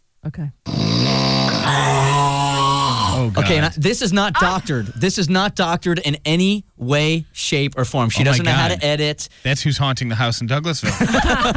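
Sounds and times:
speech: 0:00.2 - 0:02.1, 0:03.2 - 0:11.5
man snoring asleep in front of a television: 0:00.7 - 0:03.7
laughter: 0:03.4 - 0:03.8, 0:10.8 - 0:11.5.

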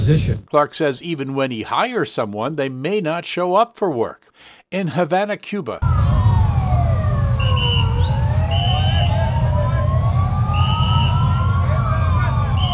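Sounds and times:
speech: 0:00.1 - 0:06.0
emergency vehicle sirens of rescuers arriving at a luxury hotel in Havana, Cuba: 0:05.8 - 0:12.7
engines and traffic rumble: 0:05.8 - 0:12.7.

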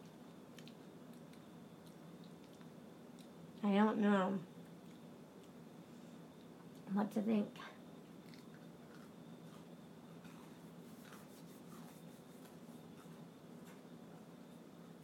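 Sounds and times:
chewing crunchy slightly burnt air-fried food: 0:00.0 - 0:03.4, 0:08.0 - 0:11.3
low hum: 0:00.0 - 0:15.0
speech: 0:03.6 - 0:04.5, 0:07.0 - 0:07.8.

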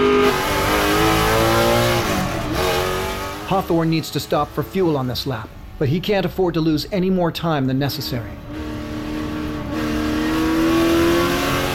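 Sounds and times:
Jaguar race car engine revving and accelerating during a race: 0:00.0 - 0:05.1, 0:08.3 - 0:11.7
speech: 0:03.5 - 0:08.5.

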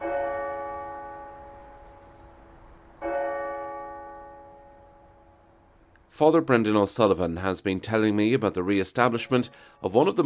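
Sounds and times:
cathedral bells chiming the hour by automated system: 0:00.0 - 0:05.6
speech: 0:06.2 - 0:10.2.

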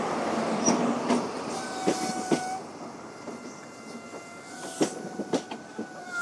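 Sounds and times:
diesel HST passenger train wheels clacking over rail joints: 0:00.6 - 0:06.2
faint train brake squeals: 0:01.5 - 0:06.2.

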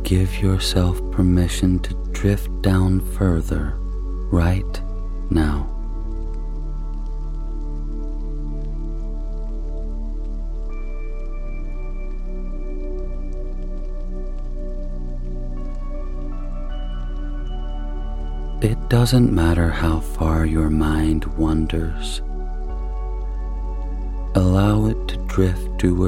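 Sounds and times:
gentle ambient drone: 0:00.0 - 0:26.0
soft rain pattering: 0:00.0 - 0:26.0
speech: 0:00.1 - 0:05.7, 0:18.6 - 0:22.3, 0:24.4 - 0:26.0.

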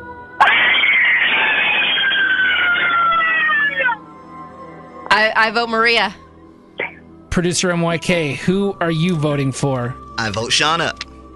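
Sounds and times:
woman's long piercing horror-movie scream: 0:00.7 - 0:04.0
speech: 0:05.2 - 0:06.2, 0:07.4 - 0:11.0.

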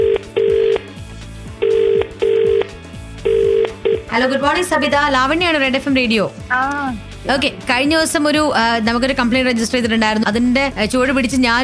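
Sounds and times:
ringback tone of an outgoing telephone call: 0:00.0 - 0:00.9, 0:01.6 - 0:04.5
speech: 0:04.2 - 0:11.6.

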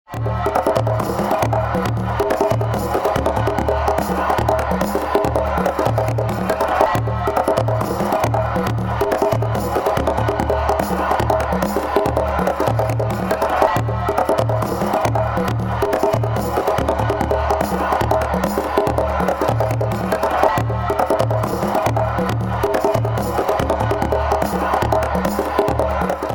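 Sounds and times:
electric conga loop: 0:00.1 - 0:26.3.

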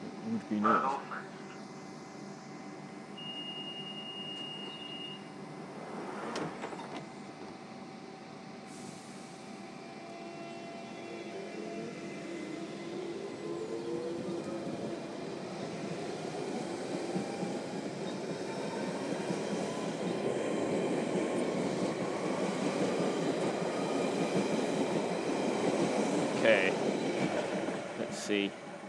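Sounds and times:
London Underground Central Line train rumbling: 0:00.0 - 0:28.8
speech: 0:00.3 - 0:01.3.

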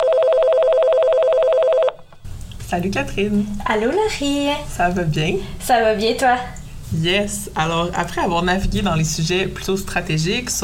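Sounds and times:
telephone ringing with an electronic trill for an incoming call: 0:00.0 - 0:02.1
speech: 0:02.7 - 0:10.6.

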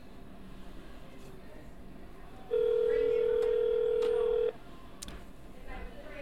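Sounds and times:
telephone ringback tone: 0:02.5 - 0:04.6.

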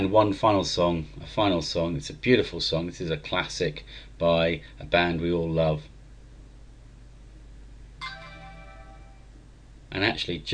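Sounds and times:
speech: 0:00.0 - 0:05.9, 0:09.9 - 0:10.5
low hum: 0:00.0 - 0:10.5
phone text message alert chime: 0:08.0 - 0:09.4.

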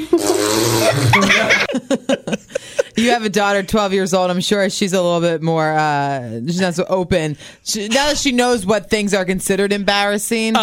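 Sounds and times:
young girl imitating a fart with a vocal raspberry: 0:00.0 - 0:01.6
speech: 0:00.0 - 0:02.2, 0:03.0 - 0:10.6
laughter: 0:00.8 - 0:03.3.

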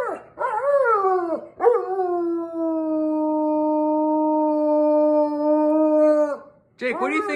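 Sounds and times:
dog howling on command: 0:00.0 - 0:07.3
speech: 0:06.8 - 0:07.3
dog barking on command: 0:06.9 - 0:07.3.

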